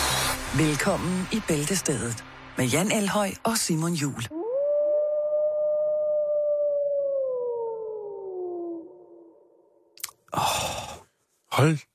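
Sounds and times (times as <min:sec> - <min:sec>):
short breathy burst of noise: 0:00.0 - 0:00.6
speech: 0:00.5 - 0:04.4, 0:11.6 - 0:11.9
person imitating a wolf howl: 0:04.3 - 0:09.4.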